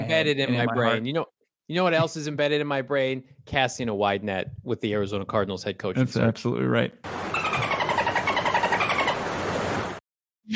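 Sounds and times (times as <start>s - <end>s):
speech: 0.1s - 7.3s
dolphin chatter sound effect: 7.3s - 9.3s.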